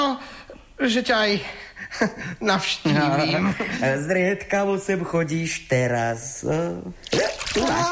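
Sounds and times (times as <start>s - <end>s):
speech: 0.1s - 7.8s
water splashing during bathing: 7.0s - 7.8s.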